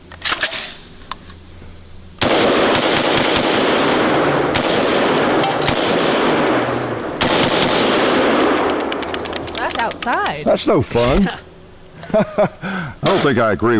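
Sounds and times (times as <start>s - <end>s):
gunfire inside a theater: 2.2s - 9.8s
speech: 10.5s - 11.4s, 12.1s - 13.7s
laughter: 11.1s - 13.6s.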